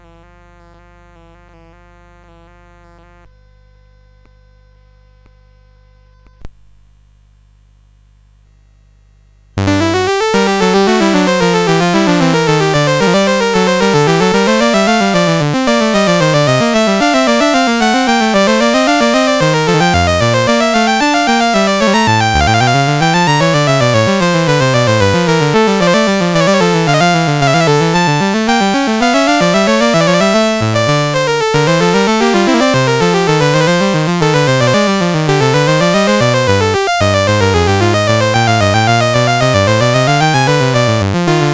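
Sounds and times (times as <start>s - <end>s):
keyboard piece on a CSG8580 synthesizer chip: 9.6s - 41.5s.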